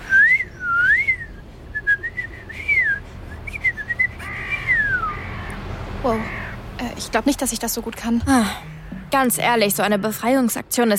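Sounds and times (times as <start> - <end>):
person whistling an imitation of a blackbird's song: 0.1 - 5.1
speech: 6.0 - 6.4, 7.0 - 10.9.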